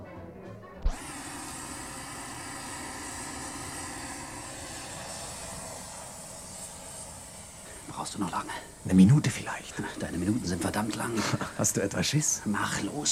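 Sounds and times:
oxy-fuel welding torch ignition pop: 0.8 - 11.4
oxy-fuel welding torch burning with a roaring hiss: 0.8 - 13.1
speech: 8.0 - 13.1.

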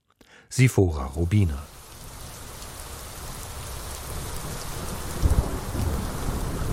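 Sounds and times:
speech: 0.5 - 1.7
heavy rain pouring: 0.9 - 6.7
deep rumble of thunder: 2.0 - 6.7.

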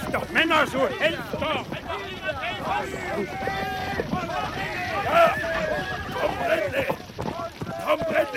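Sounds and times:
horse hooves clip-clopping: 0.0 - 8.3
several voices shouting and calling: 0.0 - 8.3
speech: 0.1 - 6.9.

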